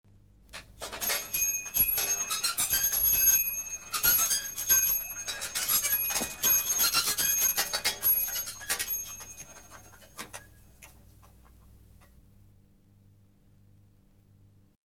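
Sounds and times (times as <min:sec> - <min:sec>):
bicycle: 0:00.8 - 0:10.5.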